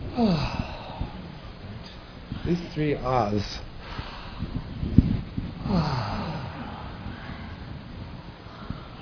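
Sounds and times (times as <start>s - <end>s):
person yawning as a jaw-loosening exercise: 0.1s - 1.4s, 5.6s - 7.5s
speech: 0.2s - 0.6s, 2.5s - 3.7s, 5.7s - 6.1s.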